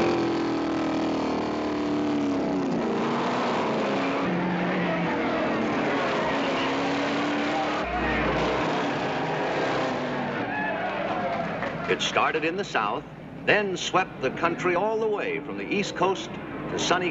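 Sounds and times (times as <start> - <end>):
stock car engines roaring around a track: 0.0 - 17.1
speech: 11.9 - 17.1.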